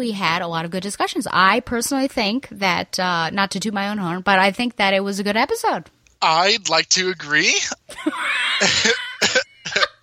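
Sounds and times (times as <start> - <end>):
speech: 0.0 - 9.4
laughter: 6.9 - 10.0
harsh hacking cough: 8.6 - 10.0.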